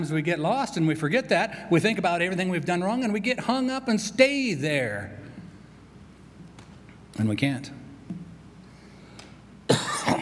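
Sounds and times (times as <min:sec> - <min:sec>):
speech: 0:00.0 - 0:05.2, 0:07.2 - 0:07.8
man coughing after speaking with a raised voice: 0:09.7 - 0:10.2.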